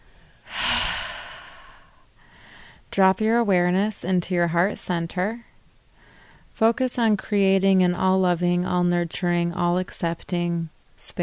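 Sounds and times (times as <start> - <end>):
deep breath: 0.0 - 2.9, 6.0 - 6.5
speech: 2.9 - 5.5, 6.6 - 11.2.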